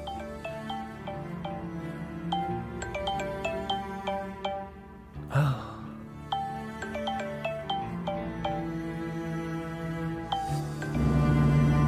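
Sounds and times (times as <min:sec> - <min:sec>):
mobile phone ringtone with bright plucked-sounding melody: 0:00.0 - 0:04.9, 0:06.2 - 0:09.2, 0:10.3 - 0:11.7
breathy burst: 0:05.3 - 0:06.0.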